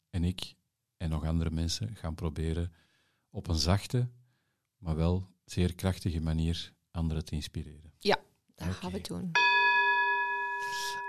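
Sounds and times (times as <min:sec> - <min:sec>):
speech: 0:00.2 - 0:04.2, 0:04.8 - 0:09.6
gong struck to signal the end of a conversation: 0:09.4 - 0:11.0.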